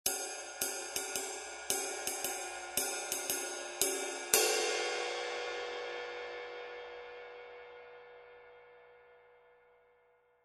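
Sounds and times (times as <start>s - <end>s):
22in custom ride cymbal: 0.1s - 7.9s.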